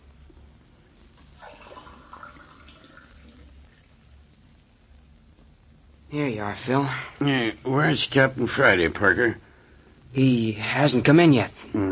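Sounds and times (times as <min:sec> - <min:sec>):
low steady hum: 0:00.0 - 0:11.9
water running from tap into glass: 0:01.4 - 0:03.8
speech: 0:06.1 - 0:09.4, 0:10.1 - 0:11.9.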